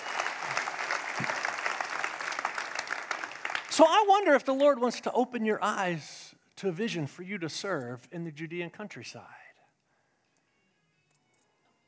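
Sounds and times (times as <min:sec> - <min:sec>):
audience applause: 0:00.0 - 0:04.1
speech: 0:03.8 - 0:09.4.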